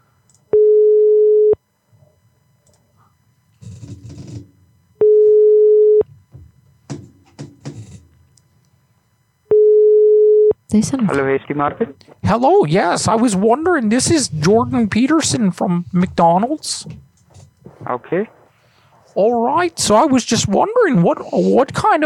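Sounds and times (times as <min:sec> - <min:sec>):
ringback tone on an outgoing phone call to a shop: 0:00.5 - 0:01.6, 0:05.0 - 0:06.1, 0:09.5 - 0:10.6
speech: 0:10.7 - 0:17.1, 0:17.9 - 0:18.4, 0:19.2 - 0:22.0.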